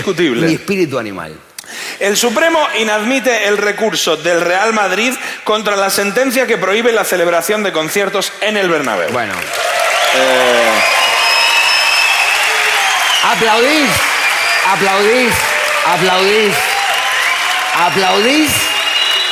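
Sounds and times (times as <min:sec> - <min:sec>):
speech: 0:00.0 - 0:11.0, 0:13.2 - 0:16.7, 0:17.8 - 0:18.7
crowd applauding: 0:07.9 - 0:19.3.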